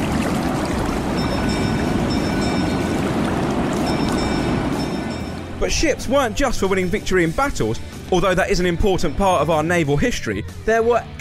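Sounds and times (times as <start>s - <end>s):
loud low rumble and wash of noise at a historic dockyard with dry docks in Kent: 0.0s - 8.2s
speech: 5.6s - 11.1s.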